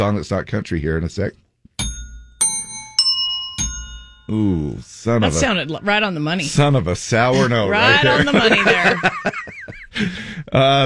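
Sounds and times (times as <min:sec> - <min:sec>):
speech: 0:00.0 - 0:01.4, 0:04.3 - 0:10.8
small ringer bell being rung: 0:01.8 - 0:06.6
laughter: 0:07.2 - 0:10.5.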